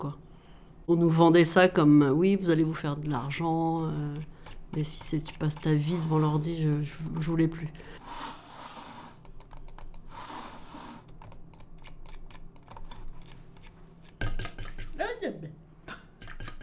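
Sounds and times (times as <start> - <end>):
speech: 0.0 - 0.2, 0.9 - 8.2
metal whisk used for whipping against a bowl: 3.1 - 8.0, 11.3 - 15.1, 16.2 - 16.6
computer mouse clicking: 3.1 - 15.0, 16.2 - 16.6.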